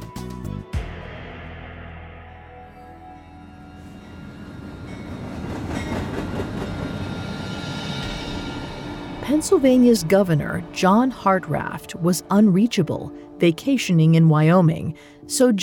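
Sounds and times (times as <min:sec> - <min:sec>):
metallic squeal: 0:02.5 - 0:10.8
express train rumbling along the rails: 0:03.3 - 0:12.0
speech: 0:09.3 - 0:15.6.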